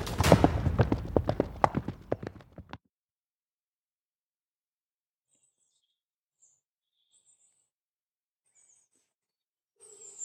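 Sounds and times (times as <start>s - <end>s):
horse hooves clip-clopping: 0.0s - 2.8s.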